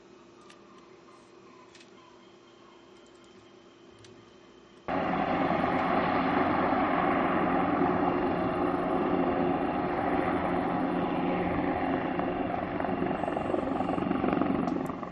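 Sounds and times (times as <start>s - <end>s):
rescue helicopter flying overhead at night searching near the Torre de Hércules: 4.9s - 15.1s.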